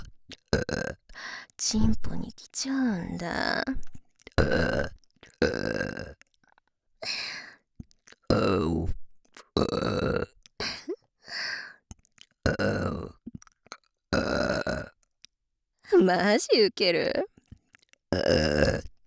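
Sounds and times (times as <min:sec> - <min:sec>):
loud burps: 0:00.5 - 0:01.0, 0:04.4 - 0:06.2, 0:08.3 - 0:08.8, 0:09.6 - 0:10.3, 0:12.4 - 0:13.2, 0:14.1 - 0:15.0, 0:18.1 - 0:19.0
speech: 0:01.6 - 0:05.0, 0:16.0 - 0:17.3.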